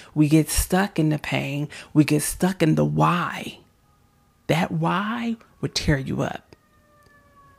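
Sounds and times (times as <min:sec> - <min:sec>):
speech: 0:00.1 - 0:03.6, 0:04.5 - 0:06.5
emergency vehicle siren wailing: 0:03.7 - 0:07.5.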